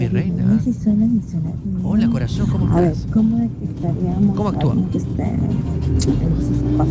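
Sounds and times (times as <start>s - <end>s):
passing vehicles: 0.0s - 6.8s
road traffic rumbling heard over a phone line: 0.0s - 6.8s
speech: 0.6s - 6.8s.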